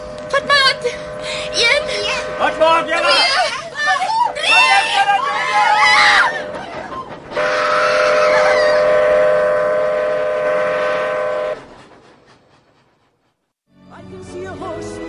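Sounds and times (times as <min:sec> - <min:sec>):
yellow and blue train horn blasting: 0:00.0 - 0:06.6, 0:07.3 - 0:11.7.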